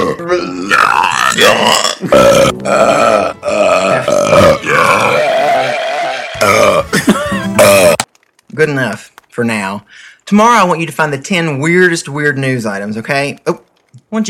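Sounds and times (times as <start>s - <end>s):
recorded belches played from a disc: 0.0s - 5.5s, 6.4s - 8.1s
speech: 0.2s - 3.4s, 8.6s - 14.2s.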